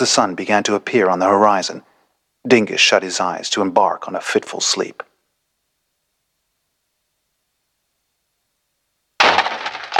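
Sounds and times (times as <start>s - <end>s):
speech: 0.0s - 5.1s
debris of a broken pot rattling and crunching: 9.2s - 9.9s
door crashing into a potted succulent: 9.2s - 9.9s.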